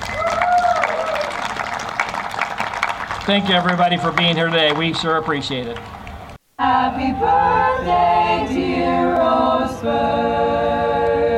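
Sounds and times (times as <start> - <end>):
crowd applauding: 0.0 - 6.3
speech: 3.3 - 6.0, 6.6 - 11.1.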